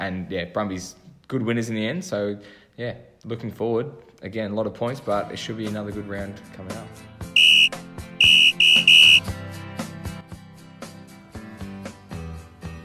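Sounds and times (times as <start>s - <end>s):
speech: 0.0s - 7.1s
referee's whistle blasts: 7.4s - 9.3s.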